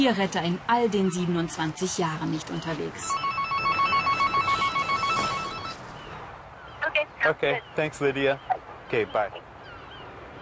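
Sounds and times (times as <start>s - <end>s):
speech: 0.0s - 3.7s, 7.2s - 9.5s
telephone warbling electronic ringtone for an incoming call: 3.1s - 5.8s.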